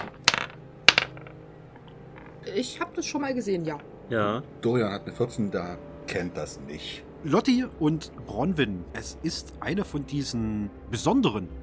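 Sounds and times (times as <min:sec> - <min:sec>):
twenty-sided dice rolled on a hard surface for a wisdom check: 0:00.0 - 0:02.5
speech: 0:02.5 - 0:11.6.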